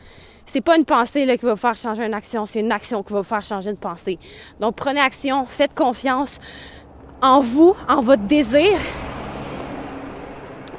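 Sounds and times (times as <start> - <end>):
broadband road noise: 0.0 - 10.7
speech: 0.5 - 9.1
truck rumbling by outside: 4.5 - 10.7.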